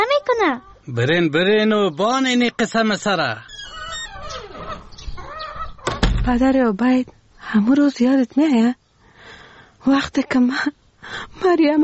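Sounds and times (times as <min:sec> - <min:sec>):
chickens clucking: 0:00.3 - 0:00.9, 0:03.6 - 0:06.0
speech: 0:00.3 - 0:03.5, 0:06.3 - 0:08.8, 0:09.8 - 0:11.8.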